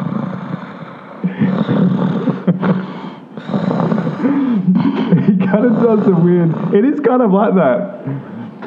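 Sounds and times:
person imitating heavy snorting breathing: 0:00.0 - 0:06.9
speech: 0:05.5 - 0:08.2.

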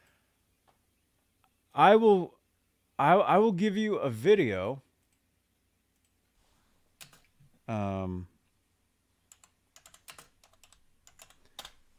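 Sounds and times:
speech: 0:01.8 - 0:02.4, 0:03.0 - 0:04.8, 0:07.7 - 0:08.3
typing on a computer keyboard: 0:07.0 - 0:07.3, 0:09.3 - 0:11.9.

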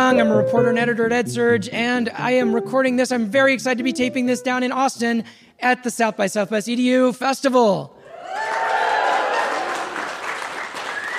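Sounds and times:
speech: 0:00.1 - 0:08.4
room full of people applauding: 0:08.2 - 0:11.1.

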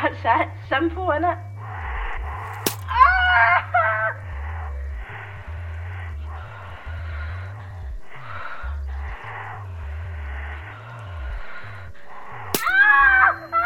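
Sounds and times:
low pulsing rumble: 0:00.0 - 0:13.6
speech: 0:00.2 - 0:01.5
wooden arrow shaft snapping: 0:02.5 - 0:03.0, 0:12.5 - 0:12.8.

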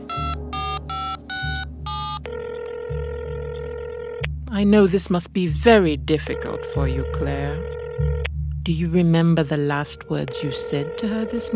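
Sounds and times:
telephone keypad tones as a number is dialed: 0:00.1 - 0:02.7
low pulsing hum: 0:01.7 - 0:11.5
speech: 0:04.6 - 0:08.1, 0:08.7 - 0:11.5.

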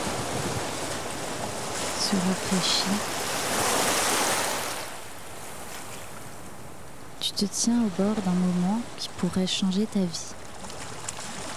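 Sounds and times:
wind gusts buffeting the microphone: 0:00.0 - 0:06.9
ocean surf at a beach: 0:00.0 - 0:11.5
speech: 0:02.1 - 0:03.2, 0:07.3 - 0:10.4.

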